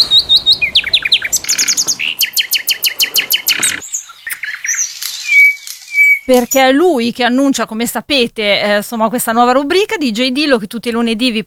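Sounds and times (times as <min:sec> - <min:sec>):
nightingale singing: 0:00.0 - 0:07.3
speech: 0:06.3 - 0:11.4.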